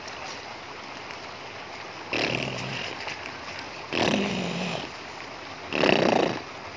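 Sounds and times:
sleeping snake snoring in raspy breaths: 2.1 - 3.0, 3.9 - 5.0, 5.7 - 6.4.

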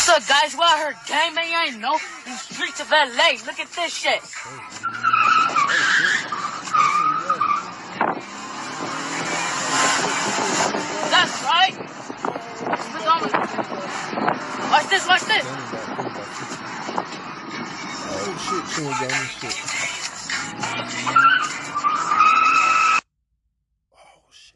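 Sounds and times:
speech: 0.1 - 5.4, 13.0 - 16.5, 18.2 - 19.8
car driven fast on city streets: 2.1 - 23.0
car tyres skidding: 4.3 - 23.0.

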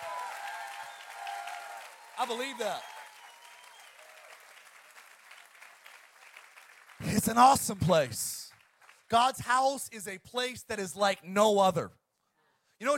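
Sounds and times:
scattered cheers: 0.0 - 4.4
audience clapping: 0.0 - 9.8
speech: 2.2 - 2.9, 7.1 - 8.4, 9.1 - 12.0, 12.8 - 12.9.

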